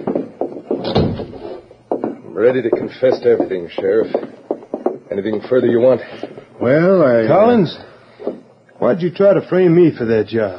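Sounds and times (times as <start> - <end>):
knocks and shuffles of movement: 0.0 - 9.0
door swinging shut with a solid thud: 0.8 - 1.6
speech: 2.4 - 4.3, 5.2 - 7.9, 8.8 - 10.5.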